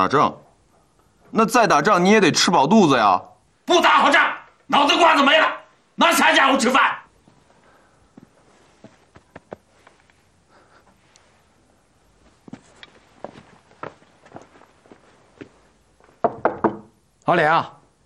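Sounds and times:
speech: 0.0 - 0.4, 1.3 - 7.0, 17.3 - 17.8
footsteps: 7.2 - 10.2, 12.2 - 16.4
loud forceful knocking on a door: 16.2 - 17.0.

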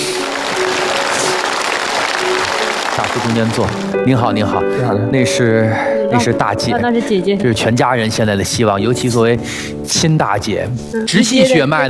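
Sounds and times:
studio show audience applause welcoming family members onto the stage: 0.0 - 4.5
speech: 3.1 - 11.8.

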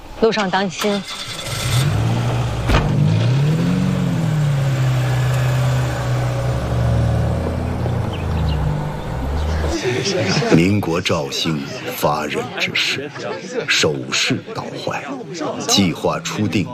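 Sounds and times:
speech: 0.2 - 1.4, 10.0 - 16.7
car engine revving as the vehicle pulls away: 0.9 - 9.8
laughter: 8.3 - 16.7.

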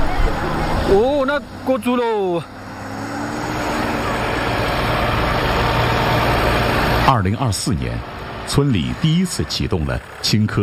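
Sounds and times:
tractor engine idling: 0.0 - 10.6
speech: 0.9 - 2.6, 7.1 - 10.6.

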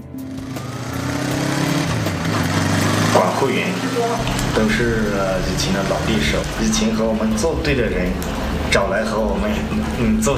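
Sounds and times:
motorcycle engine running: 0.0 - 7.6
speech: 3.4 - 10.3.

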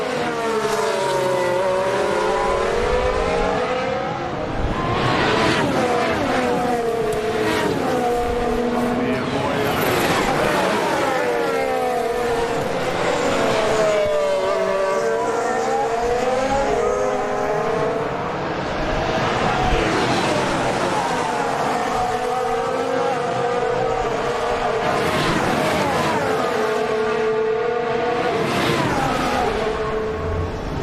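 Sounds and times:
racing car engines roaring on a track while overtaking a slower car: 0.0 - 30.8.

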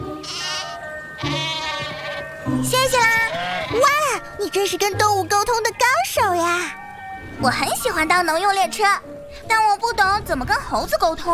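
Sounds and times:
sheep bleating: 0.0 - 4.2, 5.4 - 7.3
speech: 1.2 - 1.5, 4.3 - 6.8, 7.4 - 11.3.

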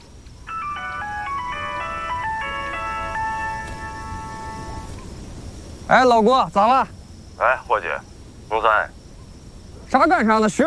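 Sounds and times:
mobile phone ringtone with a bright electronic melody: 0.5 - 5.0
speech: 5.9 - 9.0, 9.9 - 10.6.

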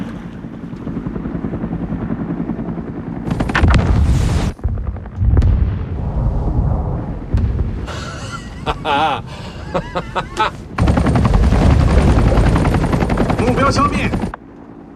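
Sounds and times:
helicopter whirring: 0.0 - 5.3, 7.9 - 14.9
depth charges exploding underwater: 3.6 - 8.0
laughter: 7.9 - 10.7
speech: 8.8 - 10.6, 13.7 - 14.3.

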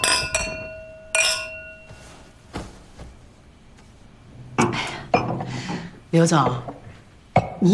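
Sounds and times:
glasses clinking in a toast: 0.0 - 2.3, 4.6 - 7.6.

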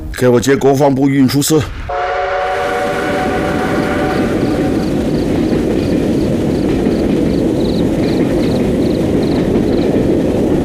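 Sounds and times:
speech: 0.2 - 1.9
departing train whistle: 1.9 - 5.3
train wheels rumbling and clacking on the rails: 2.5 - 10.6.

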